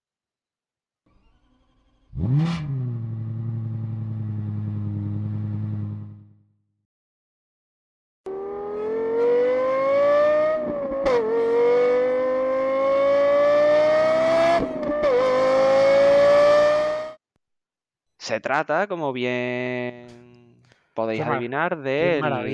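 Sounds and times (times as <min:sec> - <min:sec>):
Lexus LFA supercar engine starting, idling and revving: 0:01.2 - 0:06.2, 0:08.3 - 0:17.2
speech: 0:02.2 - 0:02.8, 0:18.3 - 0:20.2, 0:21.0 - 0:22.5.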